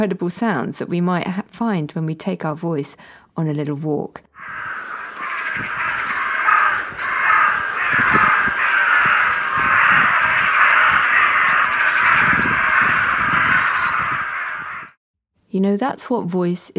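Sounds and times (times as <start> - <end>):
speech: 0.0 - 4.3, 15.6 - 16.7
crows cawing from the tops of two trees: 4.4 - 15.0
steady wind noise on a windy day: 4.4 - 15.0.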